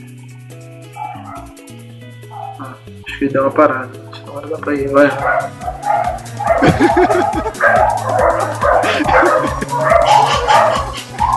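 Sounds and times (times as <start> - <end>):
several dogs barking and yelping: 0.9 - 1.6, 2.2 - 2.8, 5.0 - 11.3
speech: 2.6 - 10.9
laughter: 6.2 - 11.3.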